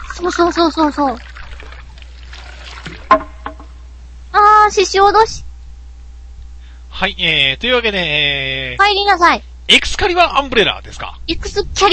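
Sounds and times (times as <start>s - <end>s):
light cool trickle of water: 0.0s - 3.7s
speech: 0.2s - 1.3s, 4.7s - 5.5s, 7.0s - 11.9s.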